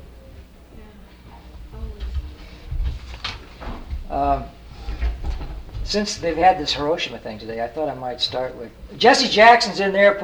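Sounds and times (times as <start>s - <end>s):
voices murmuring: 0.0s - 2.8s, 4.1s - 10.2s
room shuffling: 0.3s - 9.7s
low thumps: 0.8s - 9.2s
door scraping: 2.8s - 8.8s
speech: 4.2s - 4.6s, 5.9s - 10.2s.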